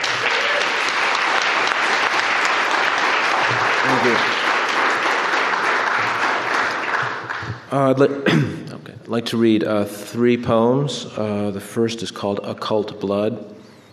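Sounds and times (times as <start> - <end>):
large audience applauding: 0.0 - 7.8
speech: 4.0 - 4.4, 7.7 - 13.6.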